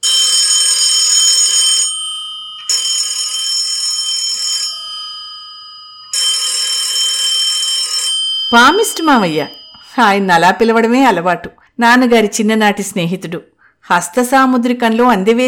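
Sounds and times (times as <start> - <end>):
telephone ringing: 0.0 - 11.2
speech: 8.5 - 15.4.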